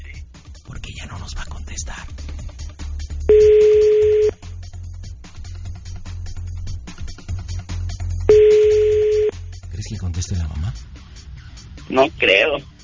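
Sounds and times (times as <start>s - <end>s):
telephone tones while a call is being placed: 3.3s - 4.3s, 8.3s - 9.3s
speech: 11.9s - 12.7s.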